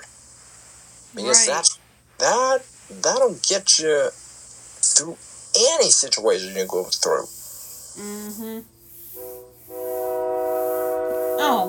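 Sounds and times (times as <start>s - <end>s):
speech: 1.2s - 4.2s, 4.8s - 7.4s, 8.0s - 9.3s
train horn blaring: 9.1s - 11.6s.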